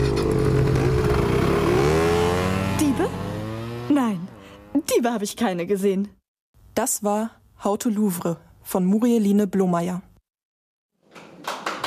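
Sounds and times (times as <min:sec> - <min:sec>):
motor scooter engines revving and driving off: 0:00.0 - 0:04.9
speech: 0:05.0 - 0:06.2, 0:06.8 - 0:10.1.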